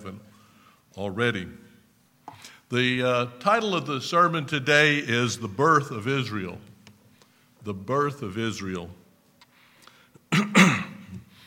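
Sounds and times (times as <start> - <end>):
speech: 0.0 - 0.3, 1.0 - 1.6, 2.4 - 6.7, 7.6 - 9.0, 10.3 - 10.7
person coughing during a church sermon: 10.3 - 11.3.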